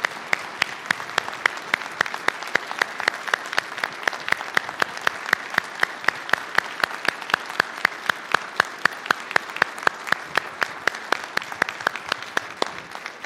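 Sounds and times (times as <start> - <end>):
church audience applauding after a choir worship performance: 0.0 - 13.2.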